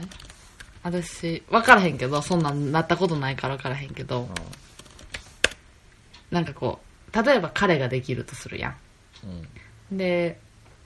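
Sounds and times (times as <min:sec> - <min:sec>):
typing on a computer keyboard: 0:00.0 - 0:00.9, 0:01.8 - 0:05.6
speech: 0:00.8 - 0:04.7, 0:06.3 - 0:10.4.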